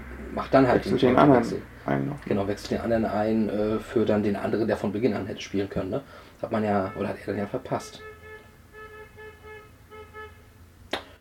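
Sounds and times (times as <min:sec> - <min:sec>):
low traffic rumble: 0:00.0 - 0:11.0
speech: 0:00.3 - 0:08.1
car horns honking from a street motorcade: 0:06.4 - 0:10.6.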